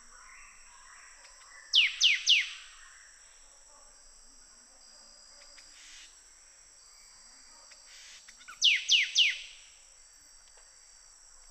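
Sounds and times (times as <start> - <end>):
thin constant hiss: 0.0 - 11.4
sooty thicket fantail call of descending high whistled notes in Papua New Guinea: 1.8 - 2.6, 8.5 - 9.6.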